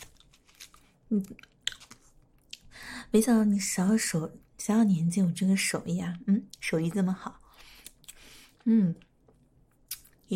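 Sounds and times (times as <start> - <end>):
chewing and biting of homemade food: 0.0 - 2.7
speech: 1.1 - 1.5, 3.1 - 7.4, 8.6 - 9.1.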